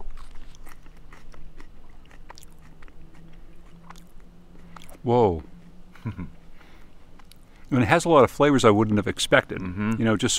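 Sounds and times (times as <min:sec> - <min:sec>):
chewing a freshly torn leaf of wild lettuce: 0:00.0 - 0:07.7
low steady hum: 0:00.0 - 0:10.3
speech: 0:05.0 - 0:06.4, 0:07.7 - 0:10.3
laughter: 0:05.9 - 0:06.4.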